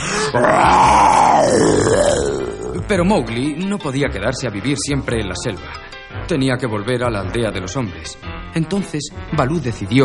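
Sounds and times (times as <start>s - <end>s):
human voice imitating a bear's roar with a throaty growl: 0.2s - 2.9s
speech: 0.3s - 1.0s, 2.9s - 10.0s.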